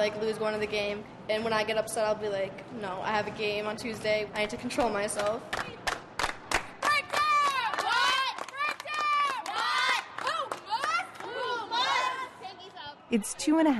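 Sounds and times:
speech: 0.0s - 5.8s, 13.1s - 13.7s
sharp claps: 4.7s - 11.4s
high school girls' basketball team shouting a rhythmic pregame cheer: 6.8s - 12.9s.

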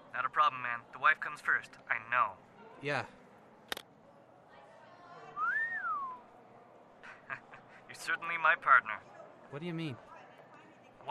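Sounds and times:
speech: 0.2s - 3.2s, 8.0s - 10.1s
man wolf whistling at passing women: 5.4s - 6.2s.

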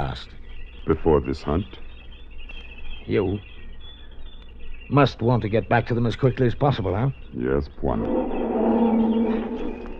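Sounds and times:
speech: 0.2s - 1.8s, 3.1s - 3.5s, 4.9s - 8.4s
lioness roaring: 8.0s - 9.9s.

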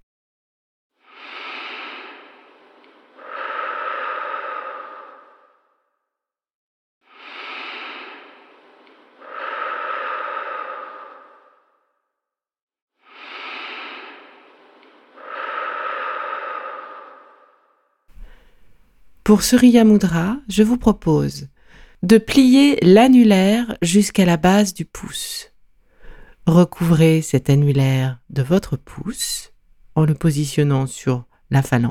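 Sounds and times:
deep breaths in a guided breathing exercise: 1.0s - 5.9s, 7.1s - 12.0s, 13.0s - 19.2s, 21.5s - 22.1s, 25.5s - 26.5s, 31.2s - 31.5s
speech: 19.3s - 25.5s, 26.4s - 31.9s.

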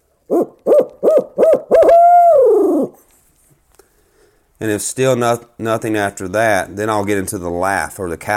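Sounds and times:
person imitating a barred owl hooting call variation: 0.3s - 3.0s
speech: 4.6s - 8.3s.

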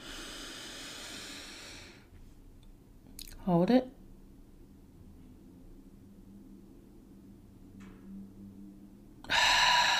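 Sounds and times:
person breathing in during a guided breathing exercise: 0.0s - 2.1s, 9.3s - 9.9s
speech: 3.4s - 4.0s.

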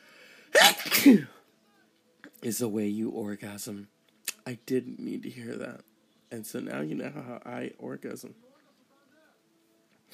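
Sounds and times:
person sneezing: 0.5s - 1.4s
speech: 1.0s - 1.3s, 2.4s - 8.5s.

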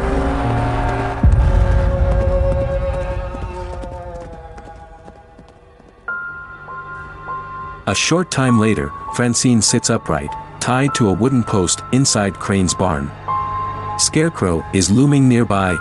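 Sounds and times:
horse rearing and galloping away into fog and trees: 0.8s - 6.1s
speech: 7.9s - 13.2s, 14.0s - 15.7s.

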